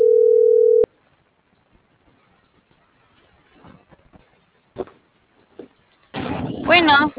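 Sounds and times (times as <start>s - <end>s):
telephone dial tone after a call is cut off: 0.0s - 0.9s
low noise: 0.0s - 7.1s
faint rustles: 1.0s - 7.1s.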